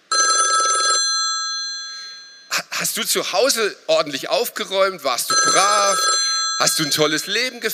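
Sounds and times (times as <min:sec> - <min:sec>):
loud mechanical telephone bell ringing: 0:00.1 - 0:02.5, 0:05.3 - 0:07.4
speech: 0:02.9 - 0:07.7.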